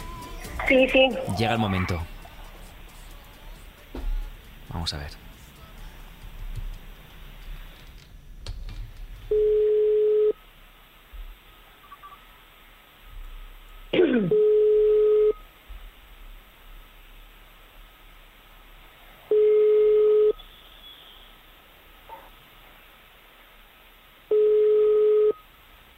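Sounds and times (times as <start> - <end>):
faint telephone line hiss: 0.0 - 25.9
speech: 0.7 - 2.1, 4.8 - 5.3
telephone ringback tone while a call connects: 9.3 - 10.4, 14.3 - 15.4, 19.3 - 20.4, 24.3 - 25.4.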